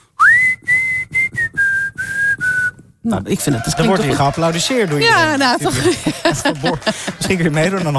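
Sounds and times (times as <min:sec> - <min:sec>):
person whistling a tune: 0:00.0 - 0:02.9
speech: 0:03.0 - 0:07.9
laughter: 0:03.4 - 0:07.9.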